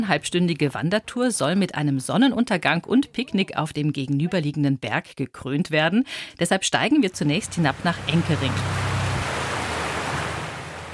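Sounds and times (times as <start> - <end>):
speech: 0.0 - 8.9
river water rushing: 7.2 - 10.9.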